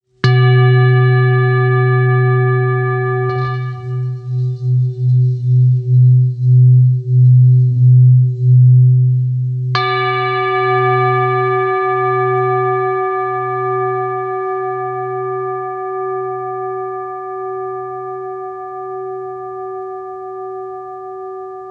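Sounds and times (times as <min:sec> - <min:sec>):
Tibetan singing bowl: 0:00.2 - 0:21.6.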